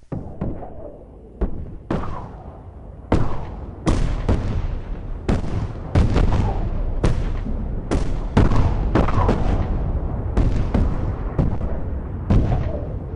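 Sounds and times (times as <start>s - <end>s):
24-pounder and 12-pounder cannons firing: 1.4s - 2.5s, 3.1s - 13.1s.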